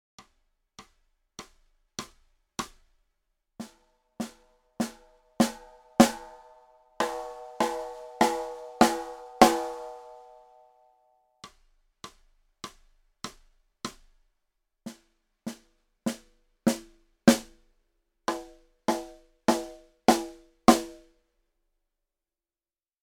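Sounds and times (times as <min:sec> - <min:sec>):
snare drum played with hickory sticks: 0:00.2 - 0:02.9, 0:03.6 - 0:10.4, 0:11.5 - 0:14.2, 0:14.9 - 0:17.6, 0:18.3 - 0:21.1.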